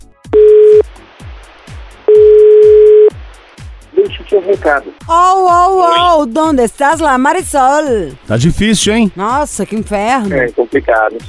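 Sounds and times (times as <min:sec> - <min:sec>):
faint regular low thumping beat: 0:00.0 - 0:11.2
telephone line tones while placing a call: 0:00.4 - 0:00.8, 0:02.1 - 0:03.1
speech: 0:04.3 - 0:11.2.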